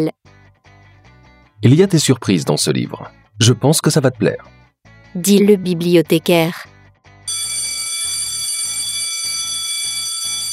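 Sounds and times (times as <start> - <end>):
speech: 0.0 - 0.2, 1.6 - 6.7
electric school bell ringing for class: 7.3 - 10.5.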